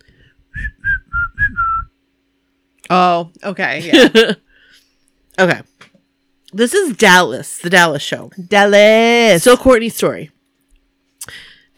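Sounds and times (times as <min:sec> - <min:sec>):
person whistling a short tune: 0:00.6 - 0:01.9
speech: 0:02.9 - 0:04.4, 0:05.4 - 0:05.8, 0:06.5 - 0:10.4.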